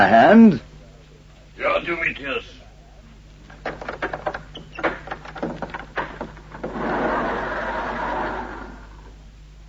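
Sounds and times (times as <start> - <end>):
speech: 0.0 - 0.7, 1.6 - 2.6
heavy warehouse doors clanking and rattling: 3.4 - 8.3
heavy warehouse doors rolling open: 3.4 - 9.2.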